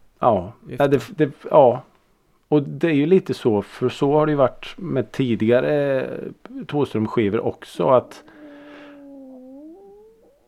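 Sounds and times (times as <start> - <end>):
speech: 0.2 - 1.9, 2.5 - 8.3
drawn-out whiny stomach growl with creaky pitch: 8.0 - 10.4.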